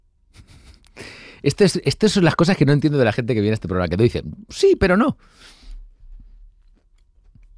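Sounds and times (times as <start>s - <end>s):
speech: 1.4s - 5.6s
person chewing a bite of food: 6.4s - 7.5s.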